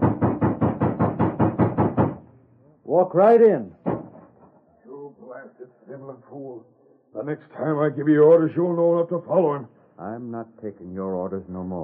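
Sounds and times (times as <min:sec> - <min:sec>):
heavy rapid pounding on a door: 0:00.0 - 0:02.3, 0:03.8 - 0:04.4
speech: 0:02.9 - 0:03.8, 0:06.0 - 0:11.8.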